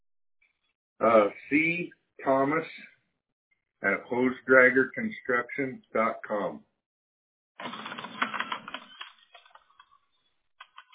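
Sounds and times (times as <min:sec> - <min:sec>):
speech: 0:01.0 - 0:02.9, 0:03.8 - 0:06.7
typing on a keyboard: 0:07.6 - 0:10.0, 0:10.6 - 0:10.9.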